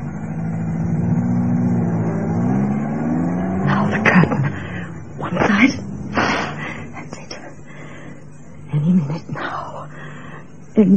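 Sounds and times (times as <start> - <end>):
car engine driving off: 0.0 - 6.9
speech: 10.8 - 10.9.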